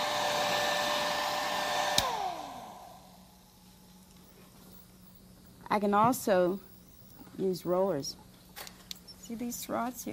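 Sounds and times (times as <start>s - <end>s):
blow dryer drying hair: 0.0s - 3.6s
blow dryer switch click: 1.8s - 2.3s
speech: 5.7s - 6.7s, 7.4s - 8.7s, 9.3s - 10.1s.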